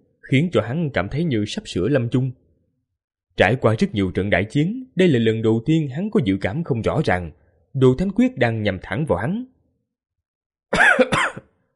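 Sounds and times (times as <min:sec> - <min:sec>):
speech: 0:00.3 - 0:02.4, 0:03.4 - 0:09.5
man coughing up blood after a grave wound in battle: 0:10.7 - 0:11.6.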